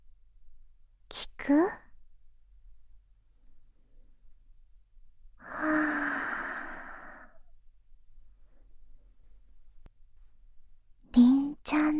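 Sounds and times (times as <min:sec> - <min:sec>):
speech: 0:01.5 - 0:01.8
soft breath blown into microphone: 0:05.4 - 0:07.5.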